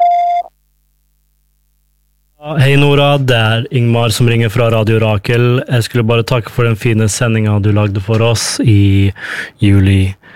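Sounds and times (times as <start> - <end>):
voicemail beep tone: 0.0 - 0.5
speech: 2.5 - 10.3.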